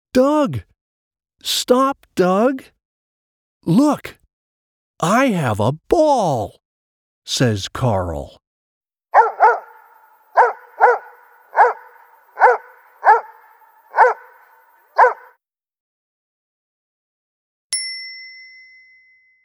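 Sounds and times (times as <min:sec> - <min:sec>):
speech: 0:00.2 - 0:00.7, 0:01.4 - 0:02.8, 0:03.6 - 0:04.2, 0:05.0 - 0:06.6, 0:07.3 - 0:08.4
dog barking: 0:09.2 - 0:15.4
single bright bell ding: 0:17.7 - 0:19.4.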